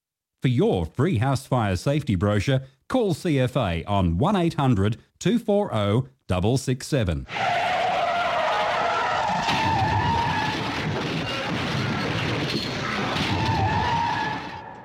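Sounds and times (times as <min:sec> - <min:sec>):
speech: 0:00.4 - 0:07.7
car tyres screeching in a long skid to a stop: 0:07.3 - 0:14.8.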